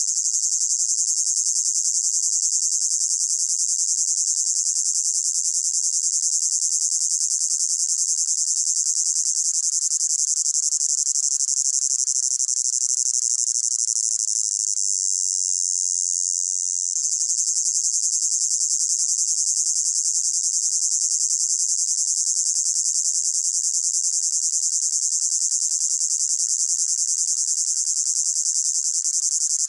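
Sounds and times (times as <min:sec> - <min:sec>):
cicada droning with high pulsating buzz: 0:00.0 - 0:29.6.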